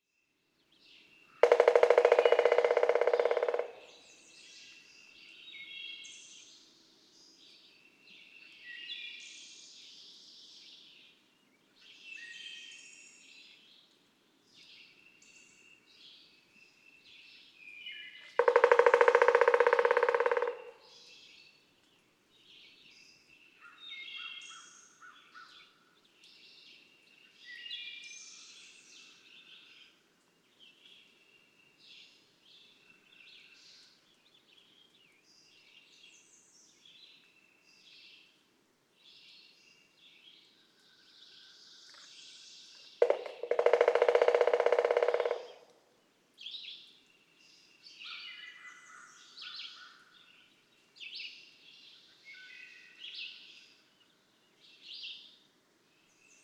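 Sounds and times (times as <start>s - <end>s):
Pileated Woodpecker drum rolls in Breaks Interstate Park, Virginia: 1.4s - 3.8s, 18.4s - 20.7s, 43.0s - 45.6s.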